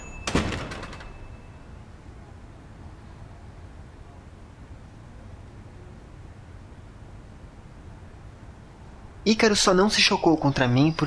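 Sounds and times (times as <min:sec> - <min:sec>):
faint steady hum: 0:00.0 - 0:11.0
door shoved open with a loud thump: 0:00.2 - 0:01.2
speech: 0:09.2 - 0:11.0.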